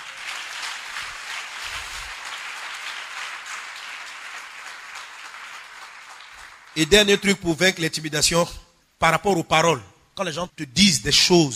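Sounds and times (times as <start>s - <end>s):
church congregation applauding: 0.0s - 7.4s
speech: 6.8s - 11.5s.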